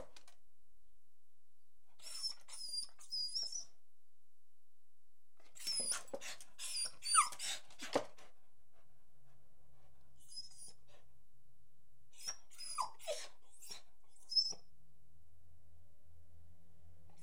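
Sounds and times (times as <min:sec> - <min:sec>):
Beagle whining: 0:02.0 - 0:03.8, 0:05.5 - 0:07.8, 0:10.2 - 0:11.0, 0:12.2 - 0:14.7.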